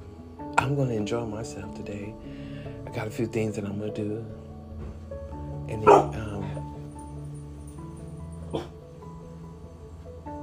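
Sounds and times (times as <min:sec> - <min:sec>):
speech: 0:00.7 - 0:04.4, 0:05.7 - 0:06.3
dog barking and whining outside: 0:05.8 - 0:06.3, 0:08.5 - 0:08.8.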